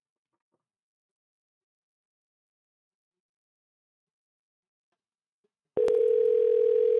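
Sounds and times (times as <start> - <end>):
electronic telephone ringback tone on an outgoing phone call: 5.8 - 6.9.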